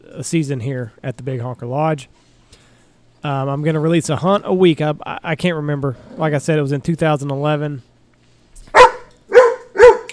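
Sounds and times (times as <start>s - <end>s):
speech: 0.1s - 2.3s, 3.2s - 7.9s
dog barking sharply: 8.7s - 10.1s.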